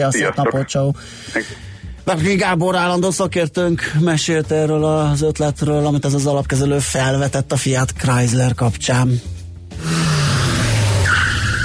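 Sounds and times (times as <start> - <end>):
speech: 0.0 - 10.0
car engine roaring: 9.8 - 11.6.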